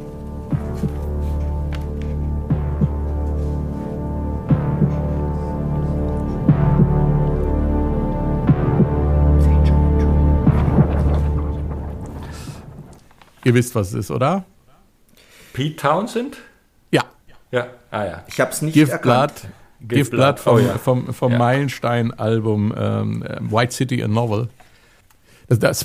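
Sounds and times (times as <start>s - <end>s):
low droning musical hum: 0.0s - 13.0s
slow heartbeat thumping in a song intro: 0.0s - 13.4s
speech: 13.5s - 14.6s, 15.6s - 24.6s, 25.5s - 25.8s.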